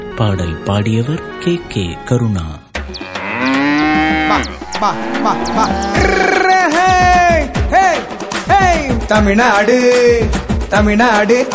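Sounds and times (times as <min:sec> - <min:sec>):
speech: 0:00.2 - 0:02.6, 0:04.3 - 0:07.6, 0:08.5 - 0:11.5
cow mooing: 0:03.0 - 0:06.4.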